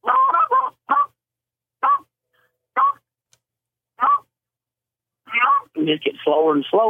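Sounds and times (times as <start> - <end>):
duck call clucking: 0.0 - 1.2, 1.8 - 2.1, 2.8 - 3.0, 4.0 - 4.3, 5.3 - 5.7
speech: 5.9 - 6.8.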